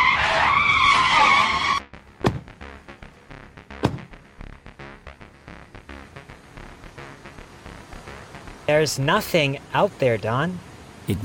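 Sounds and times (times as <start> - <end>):
vehicle tire screeching as it brakes hard and skids: 0.0 - 2.5
sharp clattering impacts: 2.2 - 2.6, 3.8 - 4.2
speech: 8.7 - 11.2.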